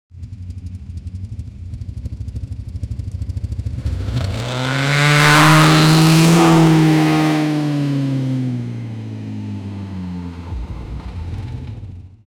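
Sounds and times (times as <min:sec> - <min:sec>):
V8 muscle car driving by: 0:03.7 - 0:12.2.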